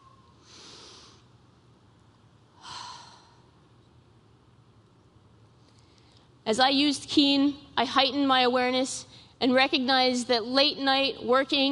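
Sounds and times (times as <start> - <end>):
group drawing a deep breath following a guided cue: 0.4 - 1.3, 2.6 - 3.6
speech: 6.5 - 11.7.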